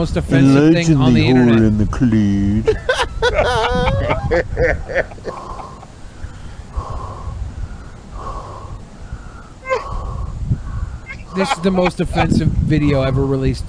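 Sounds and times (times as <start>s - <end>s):
speech: 0.0s - 5.5s, 11.4s - 13.6s
laughter: 2.6s - 5.9s, 11.1s - 12.5s
heavy rhythmic raspy breathing: 5.0s - 12.4s.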